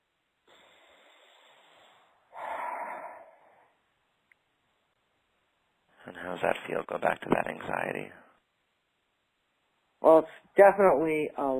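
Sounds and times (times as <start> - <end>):
deep breath during an anxiety-release relaxation exercise: 0.4 - 3.9
speech: 6.1 - 8.2, 10.0 - 11.5.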